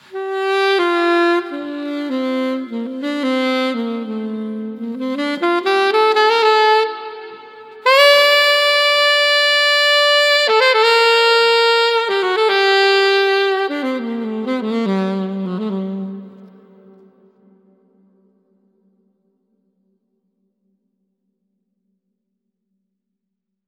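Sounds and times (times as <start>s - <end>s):
saxophone through Master Room MR-IV reverb: 0.0s - 18.5s.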